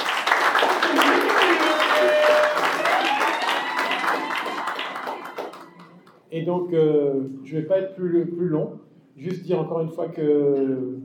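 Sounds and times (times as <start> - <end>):
sustained applause from a large audience: 0.0 - 6.2
faint cheering or voices: 0.7 - 6.0
speech: 6.4 - 11.0.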